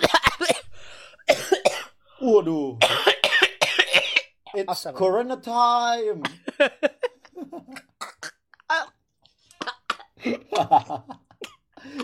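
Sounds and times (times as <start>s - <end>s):
person coughing: 0.0s - 2.0s, 2.8s - 4.4s, 9.6s - 10.8s
speech: 2.4s - 3.1s, 4.7s - 7.0s, 10.6s - 11.2s
person laughing: 6.3s - 8.0s, 10.2s - 12.0s.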